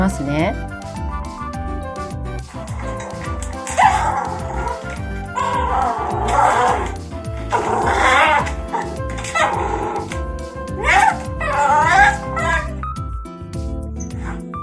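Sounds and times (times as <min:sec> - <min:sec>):
speech: 0:00.0 - 0:00.8
dog barking, yelping and whimpering during nail clipping: 0:02.5 - 0:12.8, 0:14.0 - 0:14.4.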